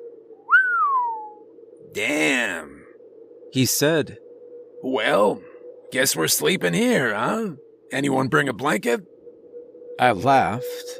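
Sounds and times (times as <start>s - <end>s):
steady low drone: 0.0s - 10.9s
person whistling in awe at a heavy snowstorm: 0.5s - 1.4s
speech: 2.0s - 2.8s, 3.5s - 4.2s, 4.8s - 9.1s, 10.0s - 10.9s.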